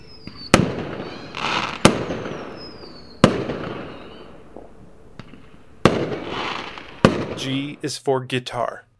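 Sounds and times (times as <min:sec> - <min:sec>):
faint rising fireworks whistle: 0:00.0 - 0:04.7, 0:05.8 - 0:07.9
fireworks exploding: 0:00.0 - 0:08.0
speech: 0:07.4 - 0:08.9.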